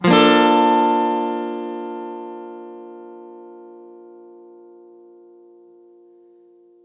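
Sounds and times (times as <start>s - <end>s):
guitar one-shots in A major: 0.0s - 4.9s.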